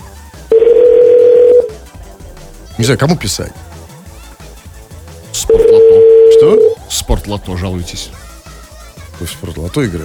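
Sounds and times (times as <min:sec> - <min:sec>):
telephone ringback tone while waiting for a call to connect: 0:00.5 - 0:01.8, 0:05.4 - 0:06.8
speech: 0:02.8 - 0:03.7, 0:05.4 - 0:08.2, 0:09.2 - 0:10.0.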